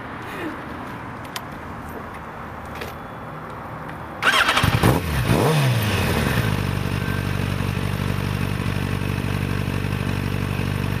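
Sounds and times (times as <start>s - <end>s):
Yamaha motorcycle engine starting in cold weather: 4.2s - 10.9s.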